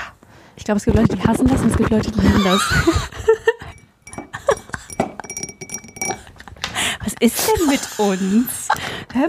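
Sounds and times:
speech: 0:00.6 - 0:03.4, 0:07.2 - 0:09.2
small glass bottle clinking as it is opened: 0:03.6 - 0:06.5.

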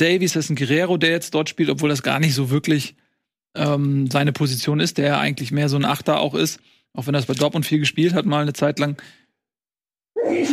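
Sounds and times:
speech: 0:00.0 - 0:09.2, 0:10.2 - 0:10.5
faint trailing breath: 0:09.0 - 0:09.4
sharp broadband sneeze with a breathy tail: 0:10.2 - 0:10.5.

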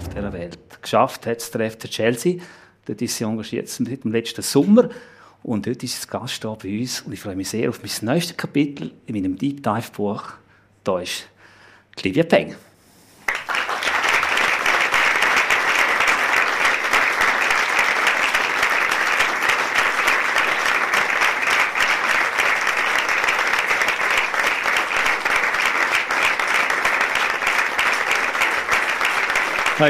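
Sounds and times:
sustained audience applause: 0:00.0 - 0:00.6, 0:13.3 - 0:29.8
speech: 0:00.2 - 0:11.3, 0:12.0 - 0:12.7.

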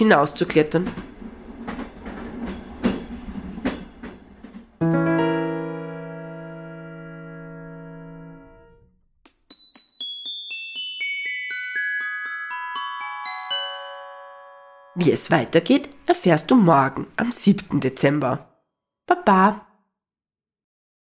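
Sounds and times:
speech: 0:00.0 - 0:01.1, 0:15.1 - 0:18.5, 0:19.1 - 0:19.6
approaching train clattering along vibrating rails: 0:00.3 - 0:04.8
cascade of bright chiming tones: 0:09.3 - 0:15.4.

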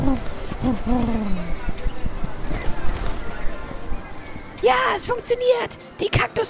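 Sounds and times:
pigeons cooing in low wavering tones: 0:00.0 - 0:01.6
flock of pigeons flapping wings as they take off: 0:00.0 - 0:03.8
speech: 0:00.1 - 0:01.7, 0:04.6 - 0:06.4.

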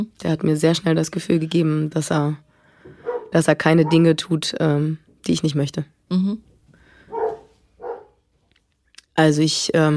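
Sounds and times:
speech: 0:00.0 - 0:06.5, 0:09.2 - 0:09.9
dogs barking: 0:03.0 - 0:04.2, 0:07.1 - 0:08.2.

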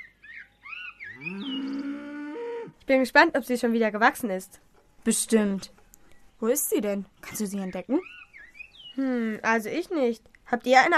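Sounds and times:
cows mooing on a sunlit pasture ringed by dense fir forest: 0:01.1 - 0:02.8
speech: 0:02.9 - 0:05.8, 0:06.4 - 0:08.2, 0:09.0 - 0:10.9.

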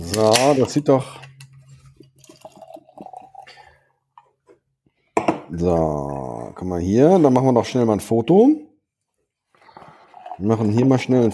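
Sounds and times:
speech: 0:00.1 - 0:01.3, 0:05.6 - 0:08.7, 0:10.4 - 0:11.3
beer poured out of a can: 0:01.7 - 0:03.9, 0:09.7 - 0:11.3.

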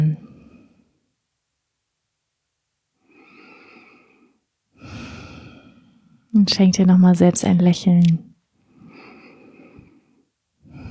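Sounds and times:
deep slow breathing in and out: 0:03.0 - 0:06.3, 0:08.7 - 0:10.9
speech: 0:06.4 - 0:08.3.

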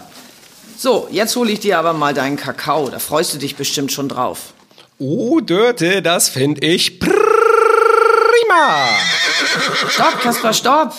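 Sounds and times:
speech: 0:00.8 - 0:07.2, 0:08.5 - 0:10.9
police horse whinnying in fright: 0:07.1 - 0:10.6.

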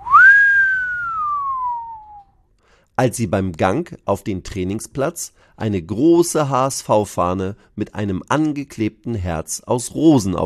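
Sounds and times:
long whistle from football players at a training ground: 0:00.0 - 0:02.4
speech: 0:03.0 - 0:10.4.

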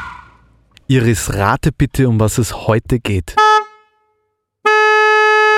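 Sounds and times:
speech: 0:00.9 - 0:03.6
car horn honking: 0:03.3 - 0:05.5.

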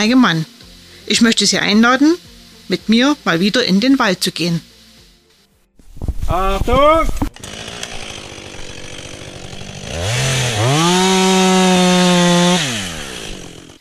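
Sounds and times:
speech: 0:00.0 - 0:04.7, 0:06.3 - 0:07.5
chainsaw idling and cutting a tree in forest: 0:06.7 - 0:13.7.

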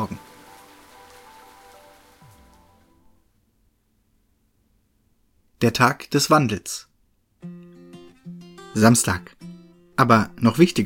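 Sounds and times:
heavy rain pouring down: 0:00.0 - 0:03.1
speech: 0:05.6 - 0:07.5, 0:08.8 - 0:09.4, 0:10.0 - 0:10.8.

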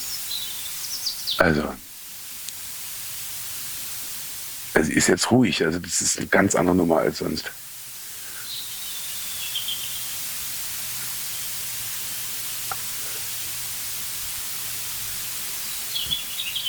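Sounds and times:
European robin singing: 0:00.0 - 0:01.5, 0:08.4 - 0:10.1, 0:15.7 - 0:16.6
steady hiss of noise: 0:00.0 - 0:16.6
speech: 0:01.4 - 0:01.9, 0:04.8 - 0:07.6.

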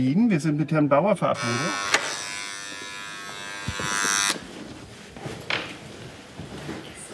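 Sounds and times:
speech: 0:00.0 - 0:02.0
room noise: 0:01.3 - 0:07.1
electric door buzzer droning: 0:01.4 - 0:04.4
faint shuffling: 0:03.7 - 0:07.1.

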